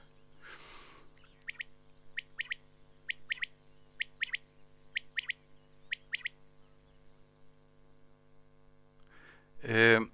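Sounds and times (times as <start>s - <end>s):
common quail calling at night in grass: 0.0s - 6.9s
low steady hum: 0.0s - 10.1s
speech: 9.6s - 10.1s.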